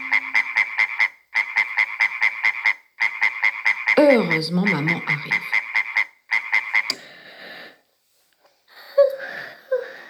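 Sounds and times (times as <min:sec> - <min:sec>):
frog alarm clock croaking: 0:00.0 - 0:07.0
speech: 0:04.0 - 0:05.6.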